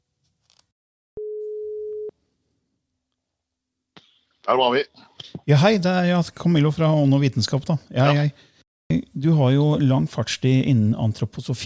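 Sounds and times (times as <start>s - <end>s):
telephone ringback tone while placing a call: 1.2s - 2.1s
speech: 4.5s - 11.6s.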